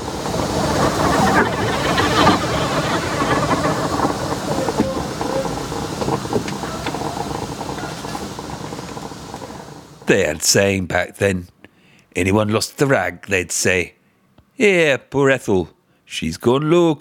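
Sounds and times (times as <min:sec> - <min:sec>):
locomotive wheels clattering on rails: 0:00.0 - 0:10.6
steam locomotive hissing and rumbling along rails: 0:00.0 - 0:11.0
speech: 0:10.1 - 0:11.6, 0:12.2 - 0:14.0, 0:14.6 - 0:16.9.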